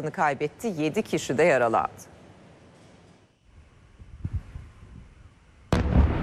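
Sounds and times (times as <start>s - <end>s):
speech: 0.0s - 2.1s
explosions during a night ballistic missile bombardment: 5.7s - 6.2s
low rumbling and thuds: 5.7s - 6.2s.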